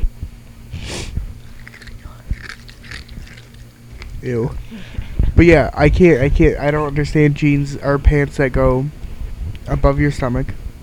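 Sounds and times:
low hum: 0.0s - 10.8s
sharp crunchy bites: 1.4s - 4.6s
wet chewing against the microphone: 1.4s - 4.8s
speech: 4.2s - 9.0s, 9.7s - 10.6s.

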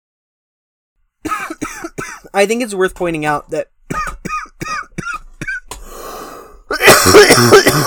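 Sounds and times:
harsh loud coughing fit: 1.2s - 2.3s, 3.9s - 5.8s, 6.7s - 7.8s
speech: 2.4s - 4.1s, 7.1s - 7.8s
short sharp breathy bursts: 5.7s - 6.7s.

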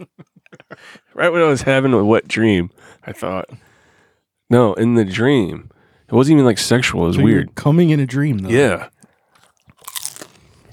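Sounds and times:
speech: 0.8s - 3.7s, 4.5s - 8.9s
chewing noises: 8.3s - 10.7s
someone biting into crunchy food: 9.0s - 10.7s.

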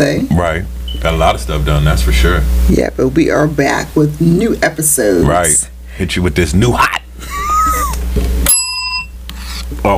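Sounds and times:
speech: 0.0s - 7.3s, 9.8s - 9.9s
bell strike: 8.5s - 9.1s.

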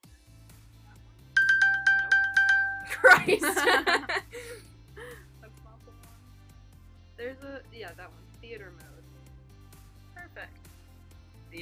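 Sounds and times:
smartwatch notification chime: 1.4s - 3.4s
laughter: 2.9s - 4.6s
speech: 3.0s - 4.6s, 7.2s - 9.0s, 10.4s - 10.7s.

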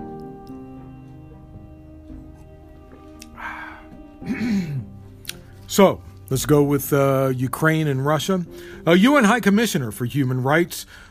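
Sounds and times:
man clearing his throat in the cold: 4.2s - 4.9s
speech: 5.8s - 11.1s.

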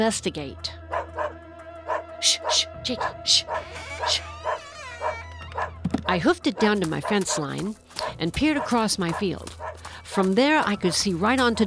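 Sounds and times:
speech: 0.0s - 0.8s, 2.2s - 4.3s, 6.1s - 11.6s
small dog yapping in high-pitched bursts: 3.0s - 5.8s.

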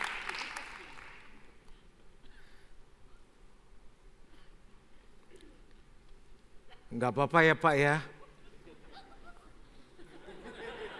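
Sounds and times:
audience clapping: 0.0s - 1.7s
speech: 6.9s - 8.1s
laughter: 8.2s - 10.9s.

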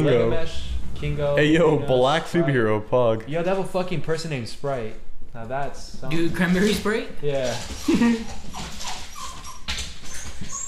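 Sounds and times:
speech: 0.0s - 8.7s
dog whimpering with short high thin cries: 7.6s - 10.6s.

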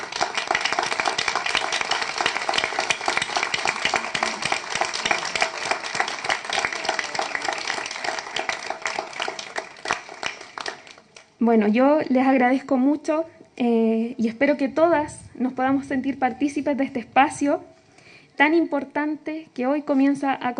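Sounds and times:
crowd applauding: 0.0s - 11.3s
speech: 11.4s - 17.7s, 18.4s - 20.5s.

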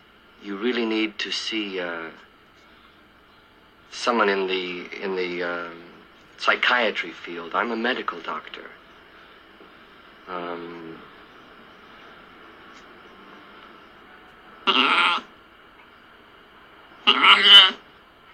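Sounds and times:
quiet hum: 0.0s - 18.3s
speech: 0.4s - 2.3s, 3.9s - 8.8s, 10.3s - 11.1s
sheep bleating: 14.6s - 15.3s, 17.0s - 17.8s.

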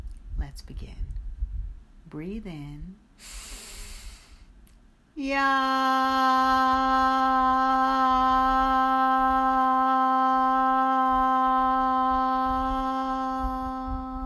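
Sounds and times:
speech: 0.5s - 1.2s, 2.0s - 3.5s, 5.2s - 7.4s
single voice chanting the tone yam on exhale: 5.2s - 14.2s.

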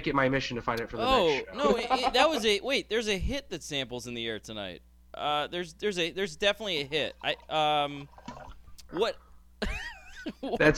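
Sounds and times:
speech: 0.0s - 8.2s, 8.9s - 10.7s
scotch being poured from a bottle: 7.2s - 8.9s.

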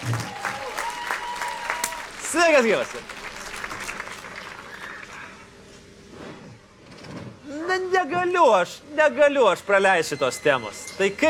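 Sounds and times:
audience clapping to welcome a guest: 0.0s - 5.4s
speech: 2.3s - 3.2s, 8.0s - 11.2s.

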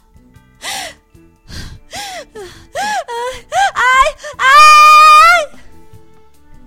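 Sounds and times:
frightened woman gasping in short panicked breaths: 0.6s - 4.4s
woman woken at night letting out a long shrill scream of fright: 2.8s - 5.6s.

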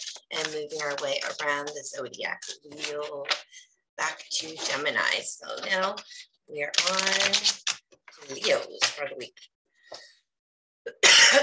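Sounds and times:
speech: 0.2s - 10.1s, 10.9s - 11.4s
person coughing: 10.9s - 11.4s.

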